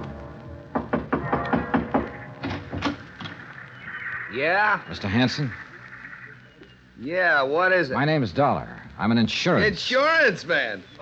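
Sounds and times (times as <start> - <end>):
firm rapid knocking on a wooden door: 0.7 - 3.0
speech: 4.3 - 5.6, 7.0 - 11.0.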